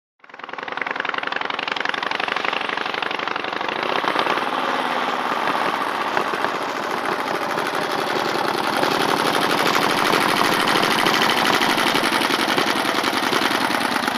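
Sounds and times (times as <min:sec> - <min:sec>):
vintage old motorbike engine stopping: 0:00.2 - 0:14.1.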